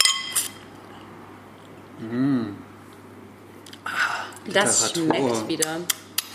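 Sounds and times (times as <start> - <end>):
wine glasses clinking in a toast with Grauburgunder: 0.0 - 0.5
speech: 2.0 - 2.6, 4.5 - 6.0.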